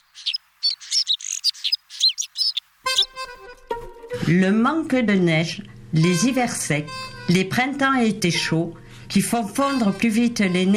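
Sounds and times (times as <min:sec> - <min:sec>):
white-winged snowfinch twittering chirps: 0:00.0 - 0:03.2
speech: 0:04.3 - 0:10.7.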